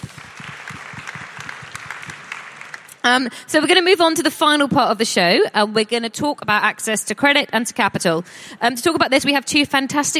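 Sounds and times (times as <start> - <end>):
audience applause: 0.0 - 3.0
speech: 3.0 - 10.1.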